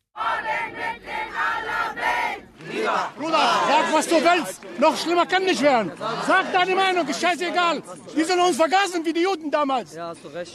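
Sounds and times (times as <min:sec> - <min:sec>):
large crowd chanting at a street march in Berlin: 0:00.1 - 0:07.8
speech: 0:02.9 - 0:10.5.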